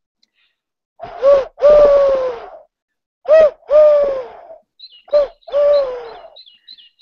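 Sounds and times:
person imitating turtle dove cooing: 0:01.0 - 0:02.7, 0:03.3 - 0:06.4.

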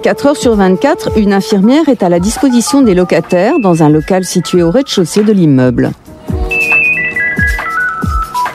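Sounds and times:
speech: 0:00.0 - 0:06.1
telephone ringing with an electronic ringtone melody: 0:02.3 - 0:05.2, 0:06.5 - 0:08.5.

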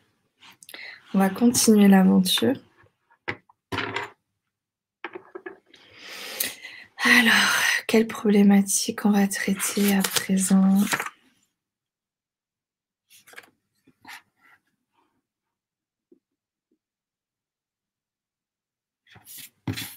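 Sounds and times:
speech: 0:01.1 - 0:02.7, 0:07.2 - 0:11.1
sheet of paper rustling and crinkling as it is shuffled and turned over: 0:09.4 - 0:11.1, 0:13.1 - 0:13.5.

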